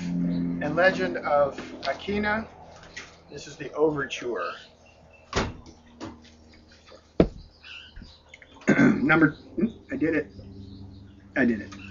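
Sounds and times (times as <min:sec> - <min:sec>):
speech: 0:00.6 - 0:02.6, 0:03.3 - 0:04.7, 0:08.8 - 0:10.4, 0:11.4 - 0:11.8
sharp knocks and clicks: 0:07.2 - 0:08.1
person clearing throat before reading aloud from a book: 0:08.6 - 0:09.2
loud mumbled vocal sounds: 0:08.6 - 0:10.4.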